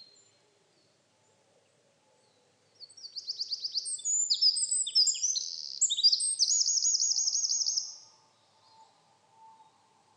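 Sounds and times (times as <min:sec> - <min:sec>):
Troglodytes troglodytes Eurasian wren song with high trill: 0:02.8 - 0:10.1.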